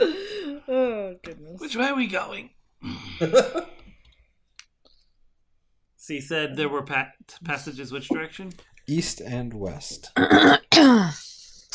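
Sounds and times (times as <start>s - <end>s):
speech: 1.7s - 3.7s, 6.1s - 11.7s
people coughing after inhaling smoke: 10.2s - 11.1s.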